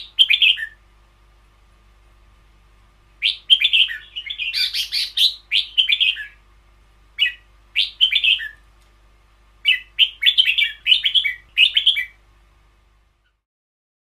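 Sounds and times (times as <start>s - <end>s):
caged Red-whiskered bulbul singing lively chirpy phrases: 0.0s - 0.8s, 3.2s - 6.4s, 7.2s - 8.6s, 9.6s - 12.2s.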